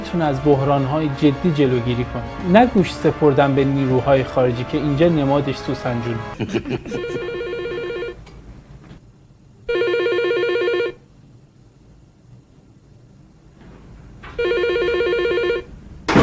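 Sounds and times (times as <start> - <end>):
low hum: 0.0 - 16.2
speech: 0.1 - 7.3
laughter: 6.0 - 7.4
telephone ringing: 6.9 - 8.2, 9.7 - 11.0, 14.4 - 15.7.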